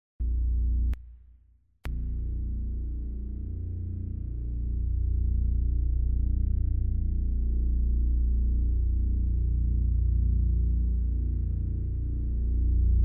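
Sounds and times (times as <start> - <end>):
noisy sub bass pad: 0.2 - 1.0, 1.9 - 13.0.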